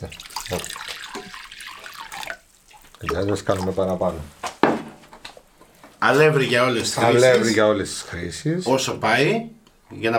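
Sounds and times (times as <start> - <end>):
speech: 0.0 - 0.8, 3.0 - 4.4, 6.0 - 10.1
lukewarm water running from a tap: 0.0 - 4.2.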